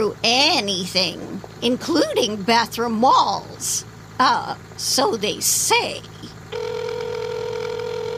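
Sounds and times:
speech: 0:00.1 - 0:06.6
wicker cricket toy telephone ringing: 0:06.5 - 0:08.1.

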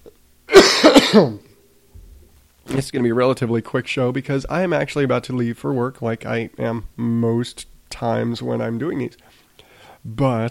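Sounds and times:
raspy throat clearing breaking into a short cough: 0:00.5 - 0:01.5
speech: 0:01.1 - 0:01.4, 0:02.7 - 0:09.4, 0:10.0 - 0:10.5.

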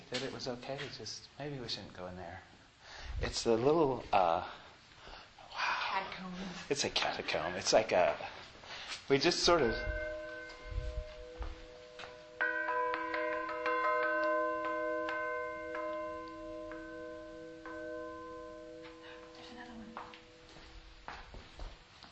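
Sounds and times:
speech: 0:00.1 - 0:02.5, 0:03.2 - 0:04.6, 0:05.5 - 0:10.0
huge iron church bell ringing: 0:09.4 - 0:20.7.

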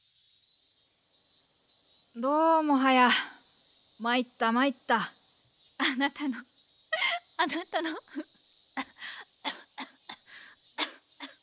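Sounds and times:
speech: 0:02.2 - 0:03.3, 0:04.0 - 0:05.2, 0:05.8 - 0:06.5, 0:07.4 - 0:08.9
woman's breathy laughter: 0:06.9 - 0:11.4
woman coughing: 0:09.5 - 0:11.4.

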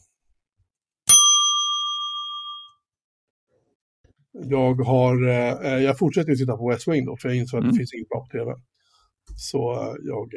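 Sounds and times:
single bright metallic bell ding: 0:01.1 - 0:02.8
speech: 0:04.4 - 0:08.7, 0:09.3 - 0:10.3.

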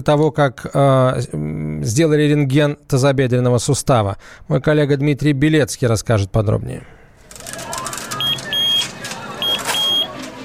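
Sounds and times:
speech: 0:00.0 - 0:07.0
walk-through metal detector frame beeping in short high electronic tones: 0:08.1 - 0:10.1.

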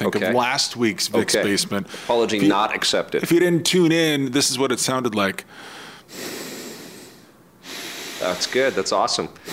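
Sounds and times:
speech: 0:00.1 - 0:06.3, 0:08.2 - 0:09.5
heavy rasping breathing: 0:01.8 - 0:02.3, 0:05.5 - 0:09.5.

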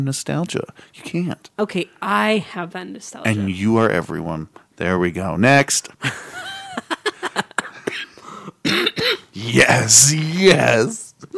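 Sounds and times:
speech: 0:00.0 - 0:06.4, 0:08.7 - 0:11.3
person coughing: 0:07.6 - 0:09.7.

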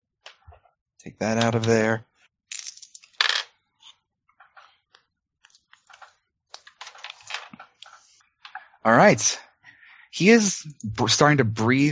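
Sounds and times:
speech: 0:01.0 - 0:02.1, 0:08.8 - 0:09.5, 0:10.2 - 0:11.9
dice clattering across a tabletop: 0:02.5 - 0:03.5.

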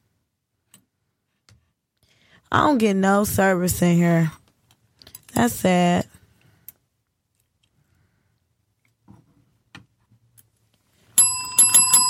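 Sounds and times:
speech: 0:02.5 - 0:04.4, 0:05.4 - 0:06.1
bright metallic bell ringing: 0:11.2 - 0:12.0.

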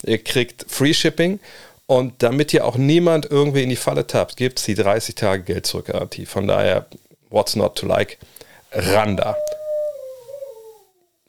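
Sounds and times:
speech: 0:00.0 - 0:09.6
female dog howling and whining: 0:08.9 - 0:11.2.

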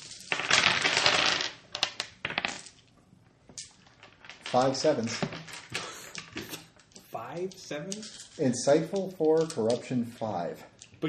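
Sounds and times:
many dice rattling and clattering during a tabletop role-playing game: 0:00.0 - 0:02.9, 0:03.6 - 0:10.0
speech: 0:04.5 - 0:05.4, 0:07.4 - 0:11.0.

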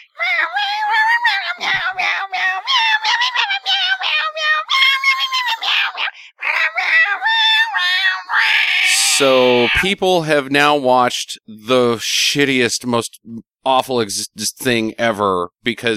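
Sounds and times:
person imitating cat meowing noises: 0:00.6 - 0:09.8
speech: 0:09.2 - 0:15.9.

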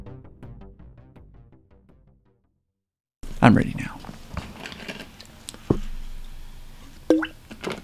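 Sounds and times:
drink liquid plopping: 0:03.2 - 0:07.8
faint rustling: 0:03.2 - 0:07.8
speech: 0:03.5 - 0:04.1.

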